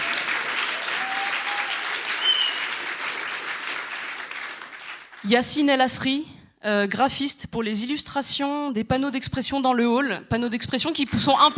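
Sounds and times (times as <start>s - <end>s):
crowd applauding: 0.0s - 5.3s
whistles from crowd: 0.8s - 2.8s
speech: 5.2s - 11.5s.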